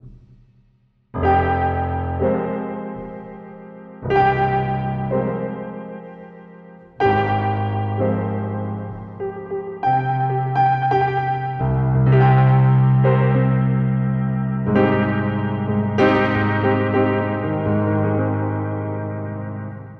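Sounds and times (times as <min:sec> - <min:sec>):
piano loop on tape: 0:01.2 - 0:19.9.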